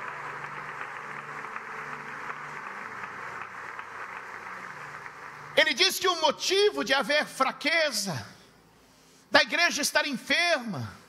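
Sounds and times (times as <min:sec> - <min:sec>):
church audience applauding: 0:00.0 - 0:06.0
speech: 0:05.6 - 0:08.3, 0:09.4 - 0:11.0.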